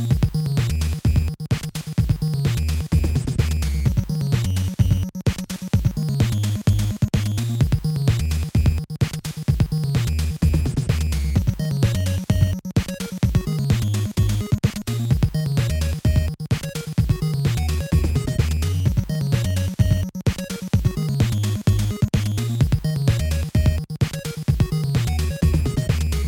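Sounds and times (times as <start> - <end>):
beat: 0.2 - 26.2.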